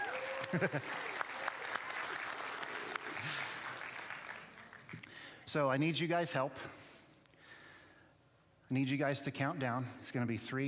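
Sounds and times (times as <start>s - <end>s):
audience applause: 0.0s - 5.1s
speech: 0.5s - 1.1s, 5.5s - 6.8s, 8.7s - 10.6s.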